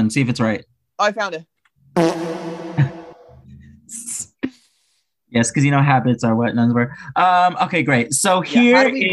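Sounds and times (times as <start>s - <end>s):
speech: 0.0s - 2.9s, 5.3s - 9.1s
comedic fart sound effect from a soundboard: 2.0s - 3.5s.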